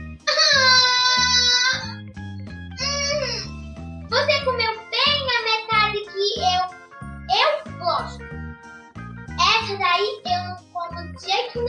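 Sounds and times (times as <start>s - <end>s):
low musical backing: 0.0s - 11.6s
child crying: 0.2s - 2.0s, 2.8s - 3.5s.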